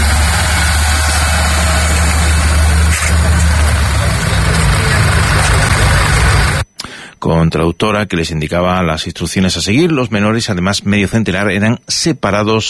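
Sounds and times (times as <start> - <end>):
large bus engine idling: 0.0 - 6.7
speech: 7.2 - 12.6.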